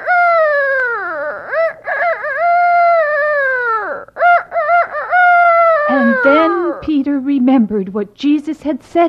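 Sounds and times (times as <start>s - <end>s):
rooster crowing: 0.0s - 6.8s
speech: 7.0s - 9.0s.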